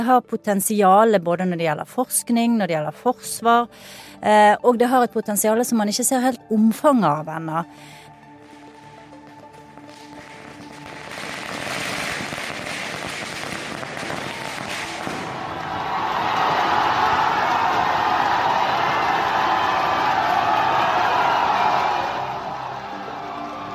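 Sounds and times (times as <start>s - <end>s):
speech: 0.0s - 8.0s
fireworks crackling and popping in a dense barrage: 8.4s - 18.0s
large crowd cheering in the streets of India celebrating the moon landing: 14.0s - 23.7s.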